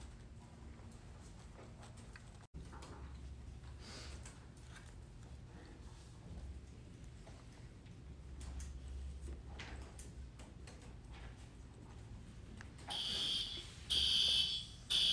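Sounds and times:
murmur of room noise: 0:00.0 - 0:15.1
fire alarm blaring in harsh shrill bursts during a test: 0:12.9 - 0:15.1.

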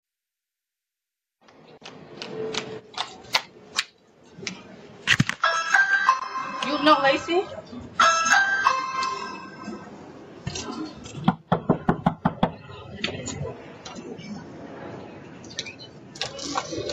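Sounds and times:
bustle: 0:01.4 - 0:16.9
voices: 0:06.5 - 0:11.3, 0:12.4 - 0:16.9
speech: 0:06.8 - 0:08.0
sharp knocks on a door: 0:11.3 - 0:12.6.

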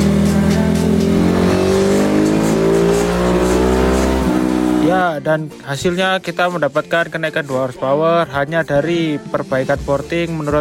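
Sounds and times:
engine revving during dyno carburetor tuning: 0:00.0 - 0:05.1
speech: 0:05.2 - 0:10.5.

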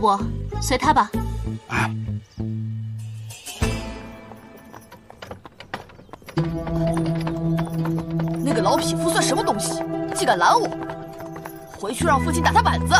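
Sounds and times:
speech: 0:00.0 - 0:02.5, 0:08.7 - 0:10.8, 0:11.8 - 0:12.9
horse hooves clip-clopping from a horse-drawn carriage: 0:03.6 - 0:12.9.

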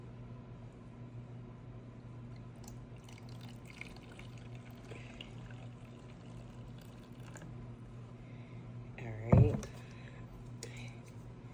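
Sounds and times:
low steady hum: 0:00.0 - 0:11.5
menthol peppermint water pouring into a container: 0:02.6 - 0:07.5.

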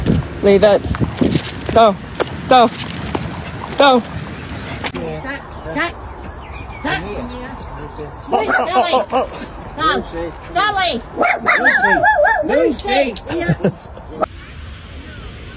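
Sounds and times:
speech: 0:00.4 - 0:03.0, 0:03.8 - 0:04.2, 0:04.9 - 0:06.0, 0:06.8 - 0:13.8
dog barking and yipping: 0:08.3 - 0:09.2, 0:11.0 - 0:13.1
laughter: 0:08.3 - 0:09.7, 0:13.1 - 0:14.3.

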